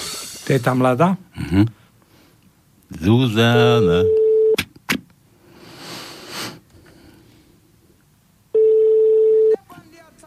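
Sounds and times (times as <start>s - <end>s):
speech: 0.5s - 1.8s, 2.9s - 4.2s
telephone line beep while a call is placed: 3.5s - 4.6s, 8.5s - 9.6s.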